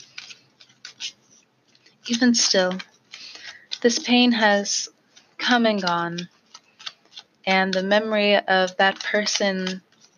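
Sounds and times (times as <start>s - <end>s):
tarot cards being shuffled: 0.0s - 10.1s
speech: 2.1s - 2.9s, 3.8s - 6.4s, 7.5s - 9.9s.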